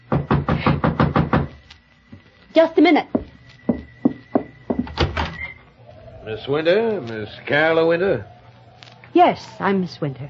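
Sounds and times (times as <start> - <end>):
knocking on a wooden cabin door: 0.1 - 1.5, 3.1 - 5.2
speech: 2.6 - 3.2, 6.3 - 8.4, 9.2 - 10.2.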